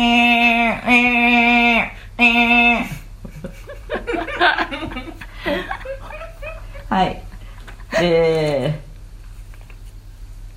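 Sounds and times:
voice imitating a cicada in Mongolian throat singing style: 0.0 - 3.1
speech: 0.8 - 2.9, 8.0 - 8.5
laughter: 2.9 - 7.0.

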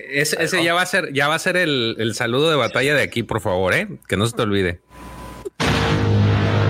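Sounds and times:
speech: 0.0 - 5.1
deep seismic charge explosion sound effect played from a soundboard: 5.6 - 6.6.

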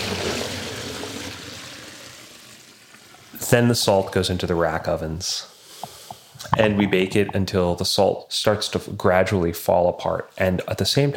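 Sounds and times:
water boiling in a salt pan: 0.0 - 5.0
speech: 3.5 - 5.5, 6.5 - 11.1.

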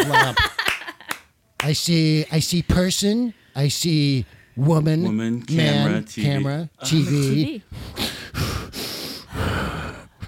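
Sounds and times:
laughter: 0.0 - 1.2
speech: 0.2 - 0.5, 1.6 - 8.1
heavy labored breathing: 7.7 - 10.2.

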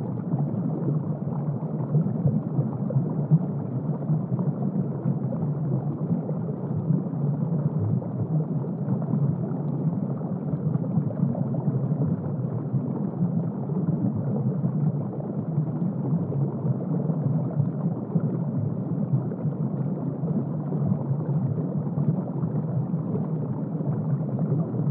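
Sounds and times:
water rush: 0.0 - 24.8.

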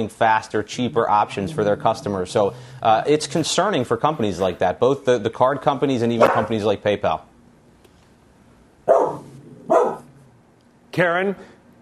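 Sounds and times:
speech: 0.0 - 7.3, 11.0 - 11.5
dog barking: 6.2 - 6.6, 8.9 - 10.1.

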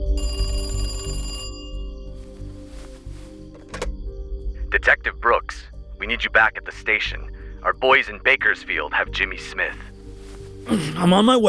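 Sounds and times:
bright buzzy telephone ring: 0.2 - 2.7
soft rustle: 2.1 - 3.9, 9.9 - 10.7
dull thunk: 3.5 - 4.0
speech: 4.8 - 9.9, 10.6 - 11.4.

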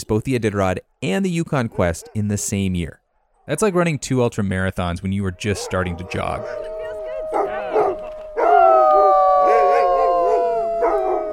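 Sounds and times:
speech: 0.0 - 6.7
huskies yipping: 1.7 - 2.2, 5.4 - 11.3
racing and retired huskies howling in a mushers' kennel: 5.2 - 11.3.

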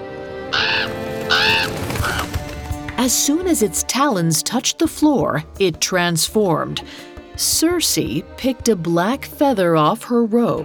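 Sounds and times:
raven cawing: 0.5 - 2.4
speech: 3.0 - 10.6.

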